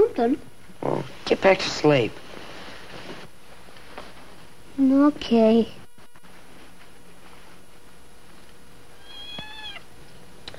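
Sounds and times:
speech: 0.2s - 2.2s, 4.8s - 5.8s
cat meowing: 9.0s - 9.9s.

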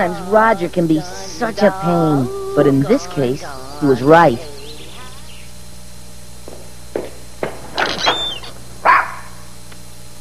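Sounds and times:
speech: 0.0s - 4.5s
dog yipping softly: 8.0s - 9.4s
dog barking: 8.8s - 9.4s.

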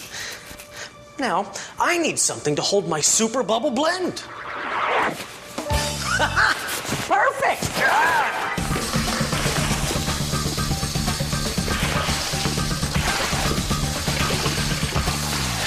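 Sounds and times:
speech: 1.2s - 5.3s, 6.2s - 8.0s
buckets of water pouring into a large container: 8.6s - 15.6s.

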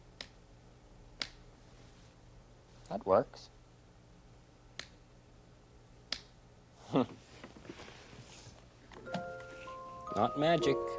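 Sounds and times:
low steady hum: 0.0s - 10.9s
finger snaps: 0.2s - 0.4s, 1.2s - 1.4s, 4.8s - 5.0s, 6.1s - 6.4s
speech: 2.9s - 3.6s, 6.9s - 7.2s, 10.2s - 10.9s.

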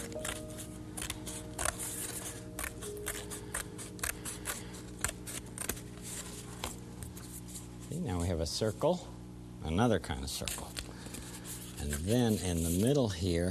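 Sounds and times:
scissors cutting the rim off a plate: 0.0s - 5.8s
steady low hum: 0.0s - 13.4s
speech: 8.4s - 9.1s, 9.7s - 10.7s, 12.0s - 13.4s.

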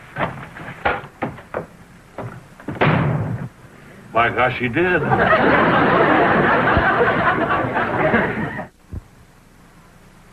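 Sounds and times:
wooden door thumps and clacks: 0.2s - 3.4s
speech: 4.2s - 6.0s
laughter: 4.9s - 8.7s.

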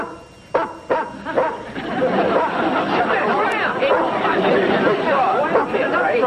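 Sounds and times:
dog barking: 0.0s - 2.5s, 3.7s - 6.1s
lively crowd of people chattering and laughing: 1.0s - 6.2s.

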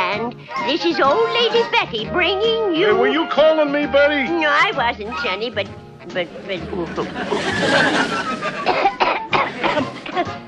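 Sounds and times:
speech: 0.2s - 9.0s
laughter: 0.5s - 2.0s, 6.3s - 10.4s
harsh rasping coughing: 8.6s - 10.4s.

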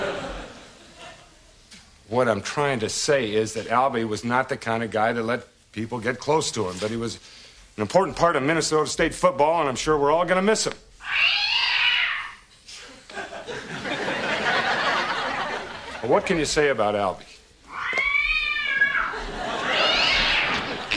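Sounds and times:
laughter: 0.0s - 1.5s, 12.9s - 16.4s, 19.1s - 20.9s
speech: 2.1s - 11.4s, 16.0s - 17.3s
male cat meowing and yowling: 11.0s - 12.5s, 17.7s - 20.9s.

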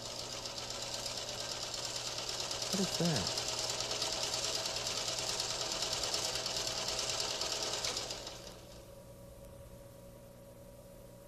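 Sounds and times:
sewing machine running: 0.0s - 8.8s
speech: 2.7s - 3.4s.

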